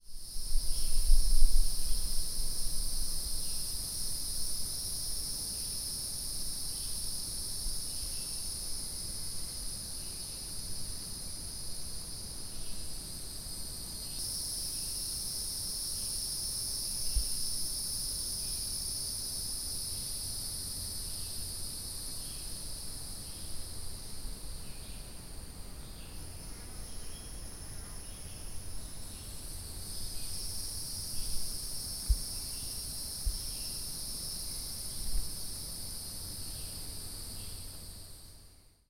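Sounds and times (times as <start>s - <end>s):
Hieroglyphic cicada chorus: 0.0s - 38.8s.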